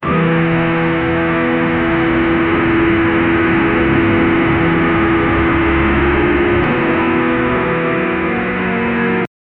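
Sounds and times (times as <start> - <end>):
sad music on a distorted radio: 0.0 - 9.3.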